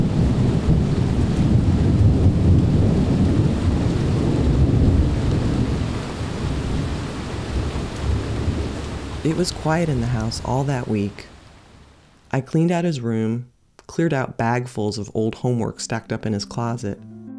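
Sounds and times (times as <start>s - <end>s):
storm wind roaring: 0.0s - 12.0s
speech: 9.3s - 11.3s, 12.3s - 17.1s.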